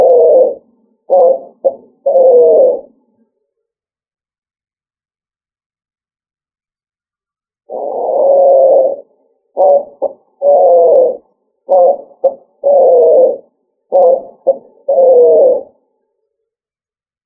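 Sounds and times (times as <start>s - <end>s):
pigeon cooing: 0.0s - 3.0s, 7.7s - 15.8s.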